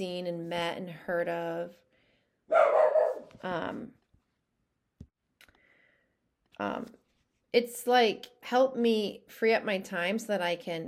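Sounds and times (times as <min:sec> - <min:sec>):
speech: 0:00.0 - 0:01.9, 0:03.4 - 0:04.0, 0:06.6 - 0:10.8
dog barking in short sharp bursts: 0:02.5 - 0:03.3.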